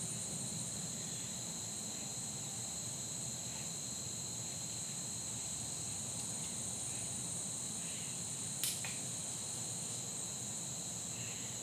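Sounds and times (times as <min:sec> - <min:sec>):
insects droning in a two-toned hum on a fall day: 0:00.0 - 0:11.6.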